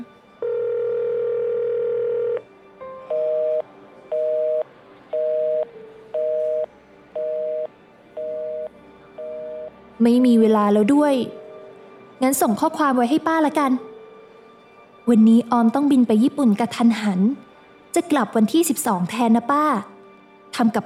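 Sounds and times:
unanswered telephone call ringing tone: 0.4 - 2.4, 3.1 - 9.7
evenly spaced short telephone beeps: 3.2 - 9.7
speech: 10.0 - 11.4, 12.2 - 13.9, 15.1 - 19.9, 20.5 - 20.8.

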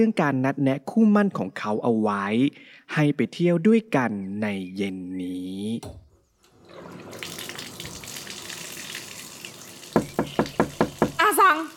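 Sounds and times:
speech: 0.0 - 6.0, 11.4 - 11.7
shower water running while someone bathes: 6.5 - 11.7
knocks: 10.0 - 11.2.

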